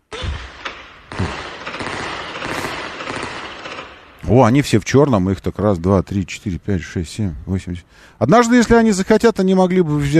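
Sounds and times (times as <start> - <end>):
grenade explosion: 0.1 - 4.2
small arms gunfire during a firefight: 0.2 - 4.2
speech: 4.3 - 10.1.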